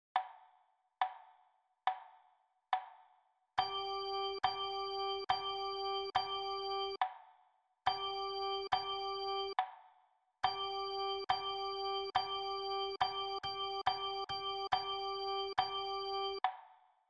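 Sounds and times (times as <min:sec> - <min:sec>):
rhythm practice on G note: 0:03.6 - 0:07.0, 0:07.9 - 0:09.6, 0:10.4 - 0:16.4.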